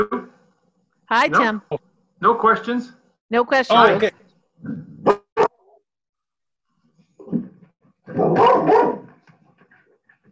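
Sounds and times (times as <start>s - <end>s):
speech: 0.0s - 0.2s, 1.1s - 5.2s, 8.2s - 8.8s
dog barking: 8.1s - 9.2s.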